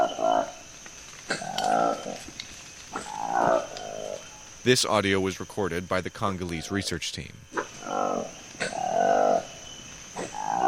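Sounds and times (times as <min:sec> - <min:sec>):
steady high insect drone in rainforest: 0:00.0 - 0:10.6
colobus monkey roaring: 0:01.3 - 0:02.2, 0:02.9 - 0:04.2, 0:07.5 - 0:10.6
speech: 0:04.7 - 0:07.4, 0:08.0 - 0:08.4.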